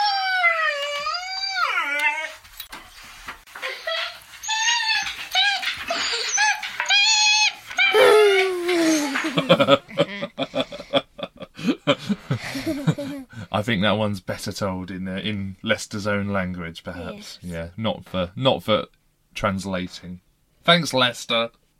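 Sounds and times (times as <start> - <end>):
dog howling and whining: 0.0 - 2.4, 4.4 - 9.2
laughter: 8.0 - 13.3
speech: 13.6 - 21.6.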